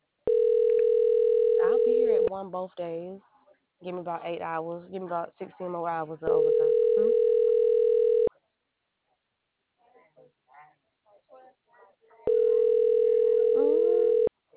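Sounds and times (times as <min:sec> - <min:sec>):
loud steady electronic phone tone: 0:00.3 - 0:02.3, 0:06.3 - 0:08.3, 0:12.3 - 0:14.3
speech: 0:02.4 - 0:07.2.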